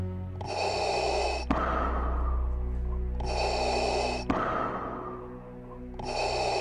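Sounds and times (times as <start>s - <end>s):
sharp raspy drawn-in breaths: 0.3s - 6.5s.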